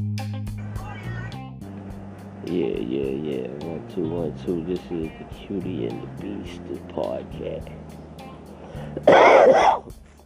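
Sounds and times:
speech: 0:02.5 - 0:08.0, 0:09.0 - 0:10.0
loud raspy cough: 0:08.9 - 0:10.0.

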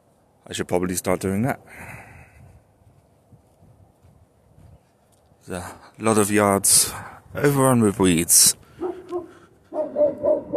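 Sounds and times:
speech: 0:00.4 - 0:02.0, 0:05.5 - 0:08.6
dog barking: 0:08.8 - 0:10.5.

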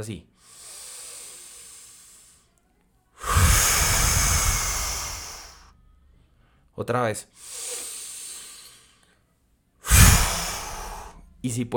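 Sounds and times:
speech: 0:00.0 - 0:00.3, 0:06.8 - 0:07.7, 0:11.4 - 0:11.7
forceful exhale through the mouth during a breathing exercise: 0:00.4 - 0:02.5, 0:03.2 - 0:05.8, 0:07.4 - 0:09.0, 0:09.8 - 0:11.4.

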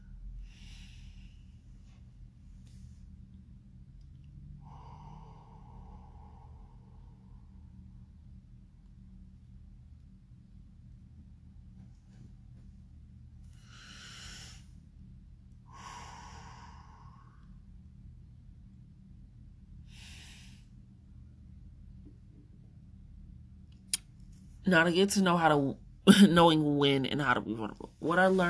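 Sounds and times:
low steady hum: 0:00.0 - 0:28.4
deep nasal breaths in: 0:00.4 - 0:03.0, 0:04.6 - 0:07.8, 0:13.6 - 0:14.8, 0:15.7 - 0:17.6, 0:19.8 - 0:20.8
speech: 0:24.7 - 0:28.4.

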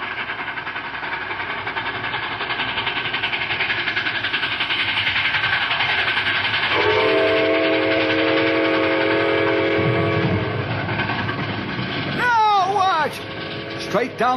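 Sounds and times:
approaching train rumbling: 0:00.0 - 0:14.3
long multi-tone train whistle: 0:06.7 - 0:10.7
brief shout or squeal: 0:12.2 - 0:13.0
speech: 0:14.0 - 0:14.3.

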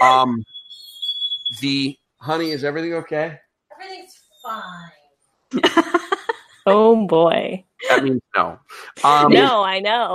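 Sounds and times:
laughter: 0:00.0 - 0:00.4, 0:01.6 - 0:03.3, 0:05.6 - 0:06.6, 0:07.8 - 0:09.6
speech: 0:00.0 - 0:00.6, 0:01.5 - 0:06.0, 0:06.6 - 0:10.1
smoke alarm beeping: 0:00.0 - 0:02.6.

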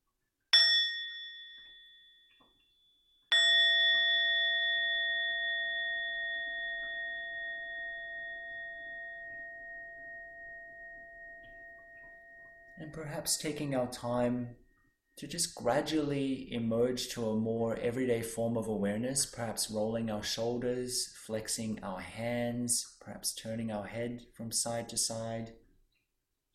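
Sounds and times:
meditation bell struck to conclude a meditation: 0:00.6 - 0:15.3
speech: 0:12.8 - 0:14.6, 0:15.2 - 0:25.6.

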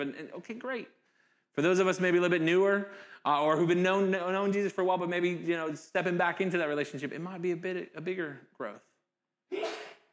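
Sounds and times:
speech: 0:00.0 - 0:01.0, 0:01.6 - 0:08.9, 0:09.5 - 0:09.8
audience member sneezing: 0:09.5 - 0:10.1.

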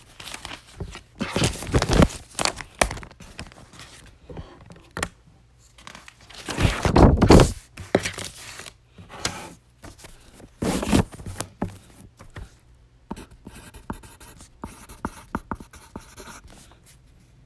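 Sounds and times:
faint paper rustling as the page shifts: 0:00.0 - 0:08.8, 0:09.8 - 0:12.5
pencil strokes scratching across paper: 0:13.1 - 0:16.7.

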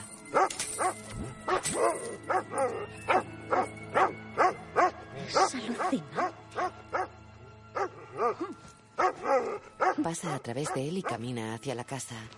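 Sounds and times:
dog barking with sharp woofs and higher yips: 0:00.3 - 0:07.1, 0:07.8 - 0:10.0, 0:10.6 - 0:11.2
speech: 0:10.2 - 0:12.3.

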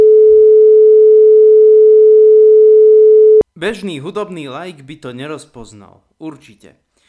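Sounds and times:
432 Hz pure sine test tone: 0:00.0 - 0:03.4
speech: 0:03.6 - 0:06.8.

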